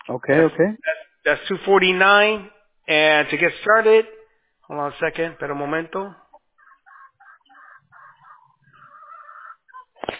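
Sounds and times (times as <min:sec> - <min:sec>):
speech: 0:00.1 - 0:06.2
low clucking: 0:06.2 - 0:10.1
drawn-out squawk: 0:06.3 - 0:10.1
harsh chicken and rooster calls in a backyard: 0:06.3 - 0:10.1.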